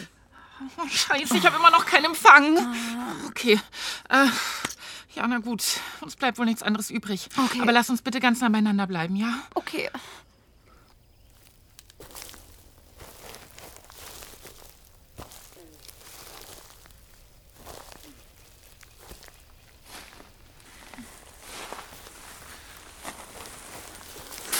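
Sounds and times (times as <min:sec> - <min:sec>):
hissy outdoor background: 0:00.4 - 0:24.5
speech: 0:00.6 - 0:04.6, 0:05.2 - 0:10.2
footsteps crunching through brush or dry leaves in bushes: 0:10.9 - 0:24.5.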